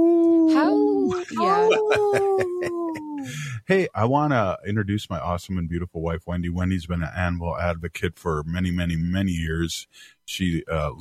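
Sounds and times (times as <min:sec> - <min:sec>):
person imitating a wolf howl: 0:00.0 - 0:03.4
laughter: 0:01.1 - 0:04.0
speech: 0:03.7 - 0:10.9.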